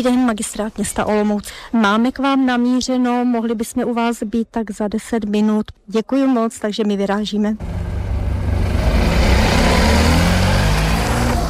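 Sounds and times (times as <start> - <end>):
speech: 0.0 - 8.0
car engine rumbling: 7.6 - 11.4.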